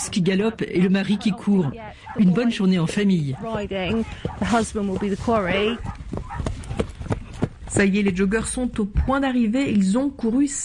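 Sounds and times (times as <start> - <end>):
pack of hounds baying and yelping: 0.0 - 7.1
speech: 0.1 - 6.0, 7.7 - 10.6.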